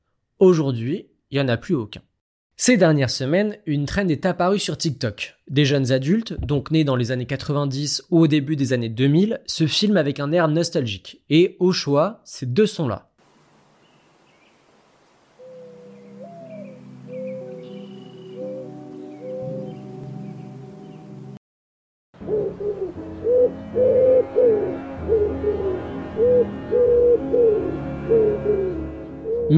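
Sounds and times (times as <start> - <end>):
speech: 0.4 - 13.1
faint bird calls: 13.4 - 20.6
dove cooing: 15.3 - 19.9, 22.2 - 29.5
soft sad tonal music passage: 15.6 - 21.4, 22.2 - 29.5.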